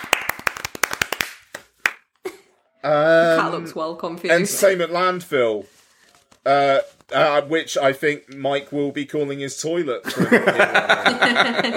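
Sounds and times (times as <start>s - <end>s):
hands clapping: 0.0s - 2.2s
speech: 2.8s - 5.8s, 6.5s - 11.7s
laughter: 10.0s - 11.7s.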